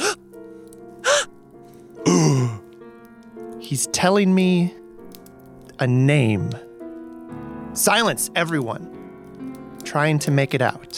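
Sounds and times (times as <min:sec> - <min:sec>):
several people gasping: 0:01.0 - 0:02.6
speech: 0:03.7 - 0:04.8, 0:05.8 - 0:06.7, 0:07.8 - 0:08.9, 0:09.9 - 0:10.9.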